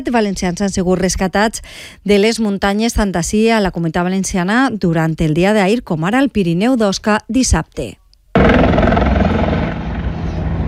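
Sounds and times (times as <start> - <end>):
speech: 0.0 - 8.0
firefighters' rescue helicopter rotor and engine roar: 8.4 - 10.6.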